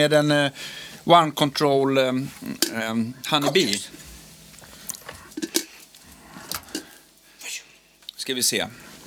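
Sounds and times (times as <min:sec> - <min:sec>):
speech: 0:00.0 - 0:04.0, 0:08.3 - 0:08.8
crunchy chewing of crisp gingerbread cookies: 0:02.4 - 0:07.4.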